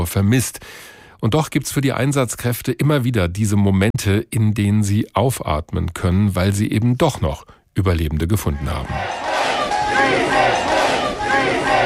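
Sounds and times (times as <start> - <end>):
speech: 0.0 - 9.3
rescue workers helpers and relatives cheering and shouting at night in Cali: 8.6 - 11.8.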